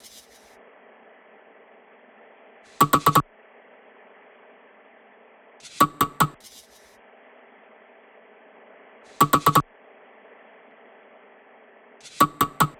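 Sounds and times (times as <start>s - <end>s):
percussion loop at 150 BPM: 2.8s - 3.2s, 9.2s - 9.6s, 12.2s - 12.7s.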